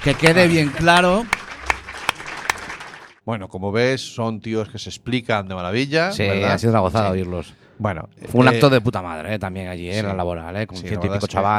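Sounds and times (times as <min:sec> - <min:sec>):
speech: 0:00.0 - 0:01.4, 0:03.2 - 0:11.5
applause: 0:00.0 - 0:03.2
sharp louder hand claps: 0:00.0 - 0:03.2
laughter: 0:00.1 - 0:01.8.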